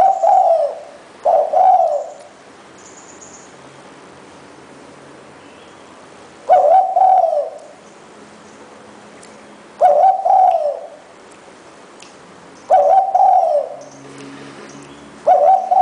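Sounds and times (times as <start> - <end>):
spotted dove cooing: 0.0 - 2.4, 6.5 - 7.7, 9.8 - 11.0, 12.7 - 13.9, 15.2 - 15.7.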